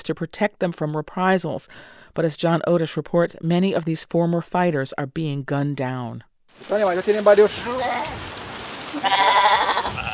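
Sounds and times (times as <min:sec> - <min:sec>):
speech: 0:00.0 - 0:08.4, 0:09.0 - 0:09.6
outdoor rustle: 0:06.5 - 0:10.1
steady rain-like hiss: 0:06.5 - 0:10.1
goats bleating on a mountain farm in the Andes of northern Colombia: 0:07.5 - 0:08.3, 0:08.9 - 0:10.1.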